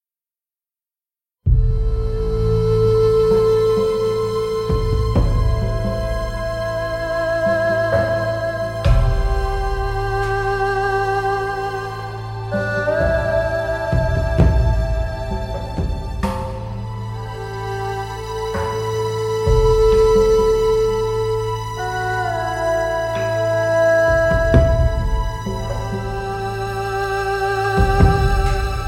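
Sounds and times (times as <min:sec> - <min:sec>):
ambient music: 0:01.5 - 0:28.8.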